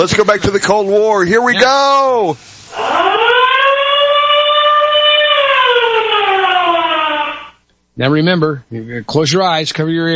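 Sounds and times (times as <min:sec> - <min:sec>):
speech: 0:00.0 - 0:03.2, 0:08.0 - 0:10.1
air-raid style siren wailing: 0:02.7 - 0:07.6.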